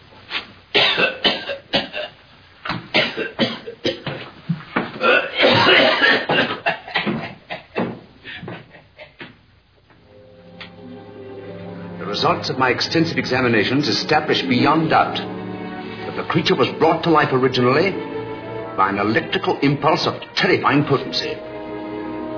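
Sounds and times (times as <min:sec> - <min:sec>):
person coughing harshly from a bone stuck in the throat: 0:00.8 - 0:02.2, 0:03.0 - 0:04.2, 0:05.0 - 0:08.6
speech: 0:12.2 - 0:15.3, 0:16.3 - 0:18.1, 0:18.8 - 0:21.5.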